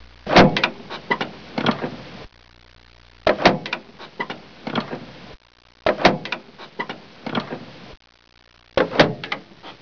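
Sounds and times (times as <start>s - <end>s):
vehicle door: 0.3s - 2.0s, 3.3s - 5.1s, 5.9s - 7.7s, 8.8s - 9.5s.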